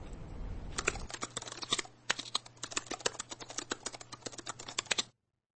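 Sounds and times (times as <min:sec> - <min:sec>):
laptop keyboard typing: 0:00.7 - 0:05.2.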